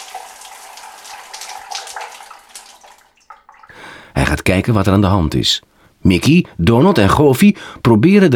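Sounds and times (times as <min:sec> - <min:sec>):
shower water spraying: 0:00.0 - 0:03.7
speech: 0:04.2 - 0:08.3.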